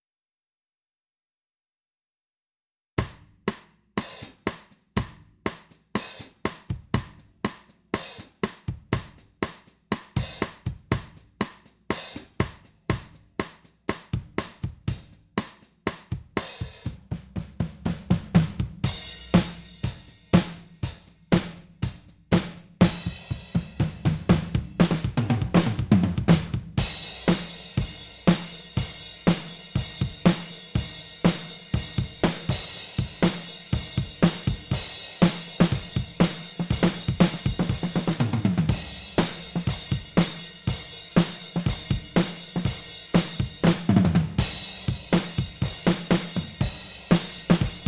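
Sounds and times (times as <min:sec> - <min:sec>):
pop drums: 0:03.0 - 0:47.8.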